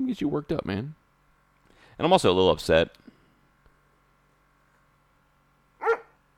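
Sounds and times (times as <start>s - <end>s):
speech: 0.1s - 1.0s, 2.0s - 3.1s
dog barking indoors: 5.8s - 6.2s.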